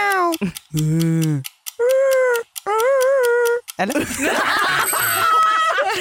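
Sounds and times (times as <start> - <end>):
speech: 0.4 - 1.6, 3.8 - 5.9
person imitating a wolf with high wavering howls: 1.8 - 3.6
laughter: 4.0 - 5.9.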